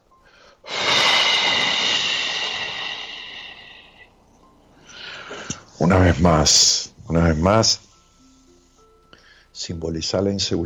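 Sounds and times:
deep breath in a guided breathing exercise: 0:00.2 - 0:04.2, 0:04.8 - 0:05.7, 0:08.4 - 0:09.6
speech: 0:05.8 - 0:07.8, 0:09.7 - 0:10.6.

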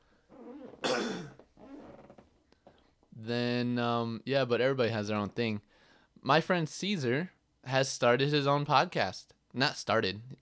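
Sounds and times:
throat clearing: 0:00.8 - 0:01.4
speech: 0:03.2 - 0:10.4.

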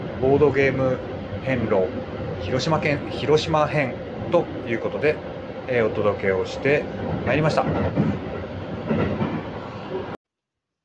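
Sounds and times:
train rattling along the rails: 0:00.0 - 0:10.2
speech: 0:00.2 - 0:08.3.

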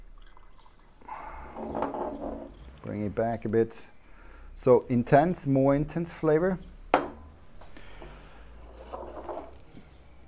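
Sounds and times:
tea poured from loose leaves after a very short brew: 0:00.0 - 0:02.9
speech: 0:02.8 - 0:04.0, 0:04.6 - 0:06.7.

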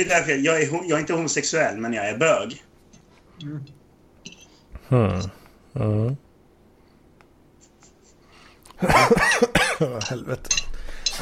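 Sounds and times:
speech: 0:00.0 - 0:02.7, 0:03.4 - 0:03.8, 0:04.9 - 0:06.2, 0:08.8 - 0:11.1
harsh rasping coughing fit: 0:08.8 - 0:10.2.

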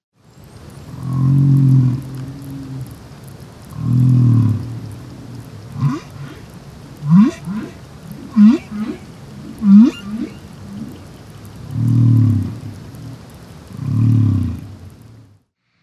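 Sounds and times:
faint watery hiss: 0:00.2 - 0:15.8
deep drawn-out whale song moans recorded by hydrophone: 0:00.9 - 0:03.0, 0:03.7 - 0:14.7
short rising whale upsweeps and chirps underwater: 0:07.1 - 0:12.4.

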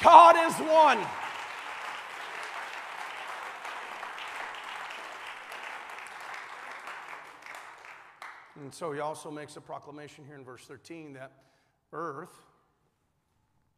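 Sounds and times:
speech: 0:00.0 - 0:01.3, 0:08.6 - 0:12.5
church audience clapping hands: 0:00.0 - 0:08.6.

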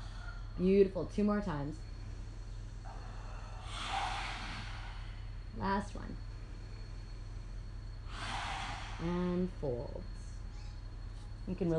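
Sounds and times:
low hum: 0:00.0 - 0:11.7
speech: 0:00.6 - 0:01.9, 0:05.6 - 0:06.3, 0:09.0 - 0:10.2, 0:11.5 - 0:11.7
lion's breath yoga exhale with tongue out: 0:02.9 - 0:05.3, 0:08.1 - 0:09.1.

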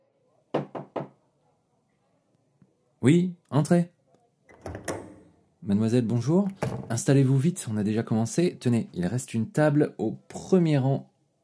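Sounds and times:
light knocks on a door: 0:00.5 - 0:01.2
speech: 0:03.0 - 0:04.0, 0:05.6 - 0:11.1.

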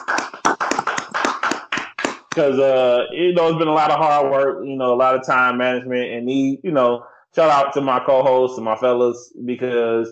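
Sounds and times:
hand clapping: 0:00.0 - 0:02.8
speech: 0:02.4 - 0:10.1.

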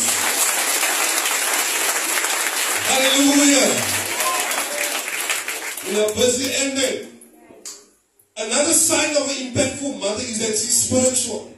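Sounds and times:
crowd applauding with steady hand clapping: 0:00.0 - 0:07.0
speech: 0:02.9 - 0:04.0, 0:05.8 - 0:07.1, 0:08.4 - 0:11.5.

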